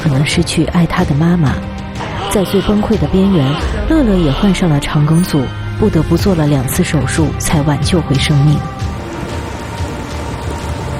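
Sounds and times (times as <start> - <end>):
speech: 0.0 - 8.8
steady rain falling on a cold day: 6.4 - 10.9.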